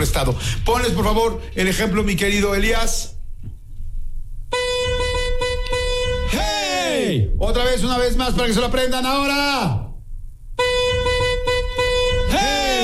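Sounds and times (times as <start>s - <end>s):
speech: 0.0s - 3.2s, 7.1s - 9.8s
loud car horn honking a signal pattern: 4.5s - 6.6s, 10.6s - 12.8s.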